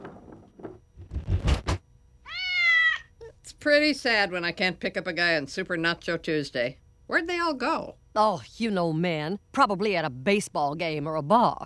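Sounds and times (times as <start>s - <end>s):
rolling clatter in a bowling alley: 0.0s - 1.4s
black cat meowing: 2.2s - 3.1s
speech: 3.6s - 11.6s.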